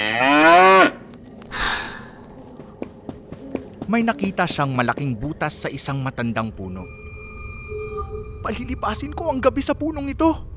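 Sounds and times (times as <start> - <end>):
large cow mooing: 0.0 - 1.0
cow snorting exhale: 1.5 - 2.2
speech: 3.9 - 7.0, 8.4 - 10.5.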